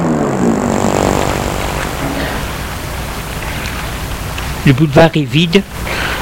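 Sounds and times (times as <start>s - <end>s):
car engine humming while driving up and parking: 0.1s - 4.6s
speech: 4.7s - 6.1s.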